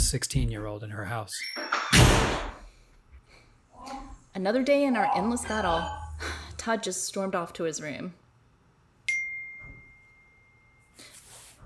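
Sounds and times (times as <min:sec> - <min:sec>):
speech: 0:00.0 - 0:01.7, 0:04.4 - 0:08.2
bright phone notification ding from a support program: 0:05.0 - 0:06.2.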